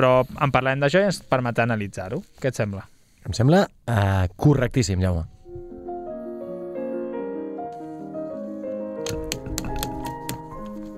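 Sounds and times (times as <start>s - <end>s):
speech: 0.0s - 5.4s
steady melodic music bed: 5.4s - 10.9s
papers rustling and being shuffled: 9.1s - 10.9s.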